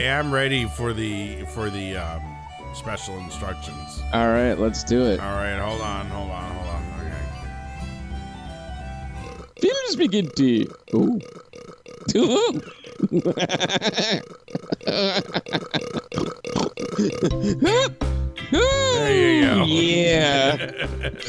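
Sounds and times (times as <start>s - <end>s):
speech: 0.0s - 6.8s, 9.9s - 11.4s, 12.0s - 16.0s, 17.0s - 21.2s
loud drawn-out belch: 10.3s - 12.3s, 15.6s - 17.4s
people laughing hysterically: 12.3s - 16.2s, 18.6s - 21.2s.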